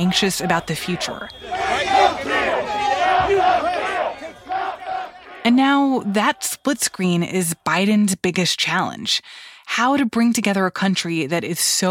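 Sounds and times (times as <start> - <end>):
speech: 0.0 - 2.4, 5.4 - 11.8
large outdoor crowd cheering in the streets celebrating a US presidential election result: 0.0 - 6.6.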